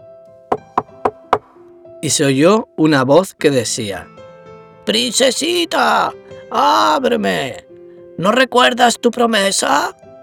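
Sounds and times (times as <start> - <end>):
firm knocking on a door: 0.5 - 1.6
speech: 2.0 - 4.2, 4.8 - 7.6, 8.2 - 10.1.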